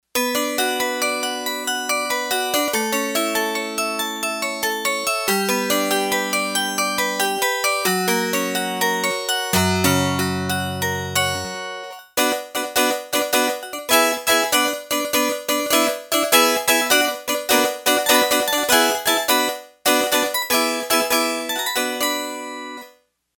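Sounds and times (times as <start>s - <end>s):
synth harpsichord wire sound on a Yamaha TX802: 0.2s - 22.9s.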